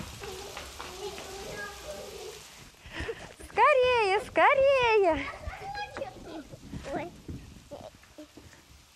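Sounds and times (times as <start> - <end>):
faint children's voices: 0.0 - 3.1, 5.0 - 8.7
heavy rain pouring down: 0.0 - 8.9
speech: 4.3 - 5.4.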